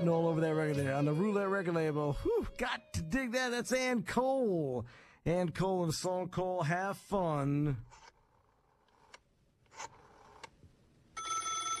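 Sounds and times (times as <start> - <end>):
speech: 0.0 - 8.0
quiet clicks and scrapes: 7.9 - 10.5
telephone bell ringing: 11.2 - 11.7.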